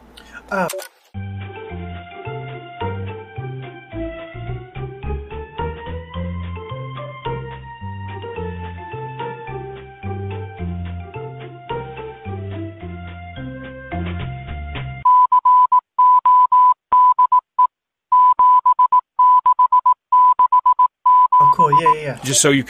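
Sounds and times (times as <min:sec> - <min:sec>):
speech: 0:00.5 - 0:00.9, 0:22.2 - 0:22.6
mellow melodic video game music: 0:01.2 - 0:15.0
high-pitched Morse code tone beeps: 0:15.0 - 0:22.0.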